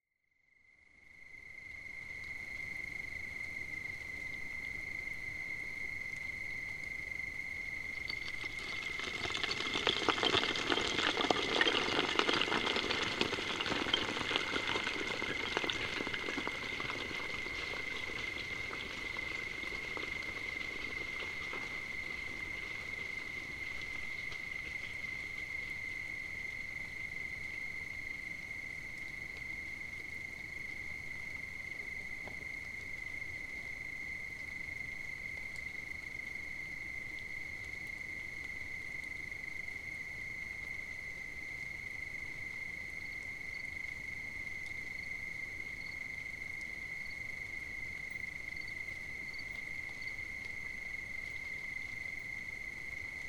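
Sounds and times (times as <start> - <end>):
crickets chirping at night: 0.4 - 53.2.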